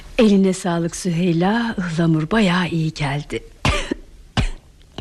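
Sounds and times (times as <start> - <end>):
speech: 0.2 - 3.5
short harsh coughs: 3.7 - 4.7.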